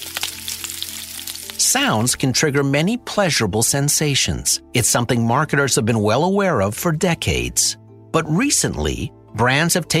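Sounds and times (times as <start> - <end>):
bacon sizzling in a pan: 0.0 - 2.1
speech: 1.7 - 9.9.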